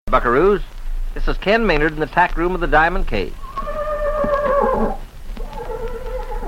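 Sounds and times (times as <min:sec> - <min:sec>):
speech: 0:00.1 - 0:03.4
low rumbling background: 0:00.1 - 0:06.4
horse neighing: 0:03.4 - 0:06.4.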